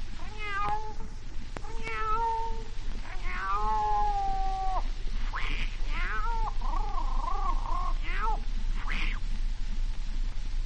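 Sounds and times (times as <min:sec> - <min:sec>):
steady low hum: 0:00.0 - 0:10.6
female cat caterwauling on rooftops at midnight: 0:00.2 - 0:01.1, 0:01.7 - 0:09.2.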